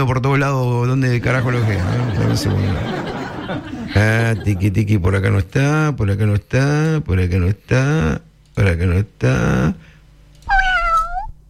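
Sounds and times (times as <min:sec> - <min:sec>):
speech: 0:00.0 - 0:09.9
faint low hum: 0:00.0 - 0:11.4
laughter: 0:01.0 - 0:05.2
cat meowing: 0:10.5 - 0:11.4.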